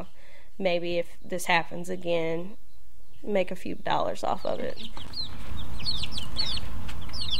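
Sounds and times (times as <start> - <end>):
speech: 0.0 - 2.6, 3.2 - 6.0
young indoor chicks chirping and peeping: 1.8 - 7.3.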